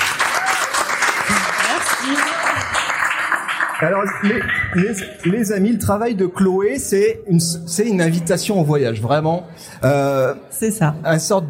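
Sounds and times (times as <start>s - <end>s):
voices calling out and cheering: 0.0s - 5.1s
crowd applauding: 0.0s - 5.8s
speech: 3.8s - 11.4s.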